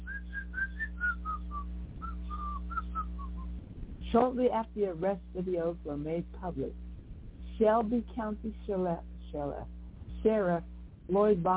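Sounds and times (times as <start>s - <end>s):
person whistling a short wandering tune: 0.0s - 3.5s
steady low hum: 0.0s - 11.5s
speech: 4.1s - 6.8s, 7.6s - 11.5s.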